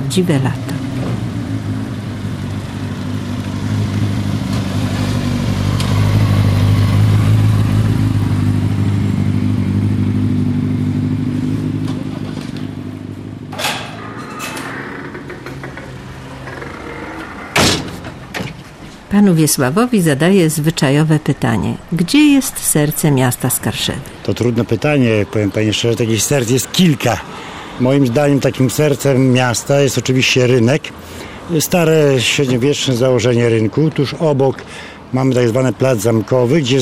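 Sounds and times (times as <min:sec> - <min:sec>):
car engine passing at the town office in Skarszewy, Poland: 0:00.0 - 0:33.2
low outdoor noise on a hot summer day: 0:00.0 - 0:36.8
speech: 0:00.1 - 0:00.8, 0:19.2 - 0:36.8
car doors shutting: 0:11.6 - 0:19.1.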